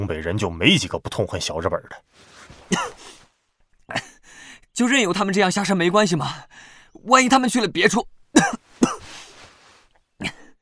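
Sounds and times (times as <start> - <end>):
speech: 0.0 - 3.2, 3.9 - 4.1, 4.8 - 9.0
person with a fractured rib coughing harshly: 2.7 - 3.2, 8.4 - 9.3, 10.2 - 10.5.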